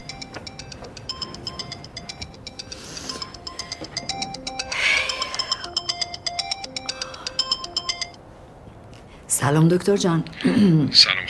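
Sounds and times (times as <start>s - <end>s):
mobile phone ringing with electronic melody: 0.0s - 8.2s
speech: 9.4s - 11.2s.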